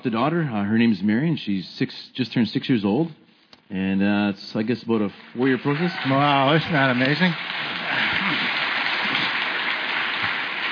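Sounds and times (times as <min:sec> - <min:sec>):
speech: 0:00.0 - 0:08.0
audience applause: 0:05.4 - 0:10.6.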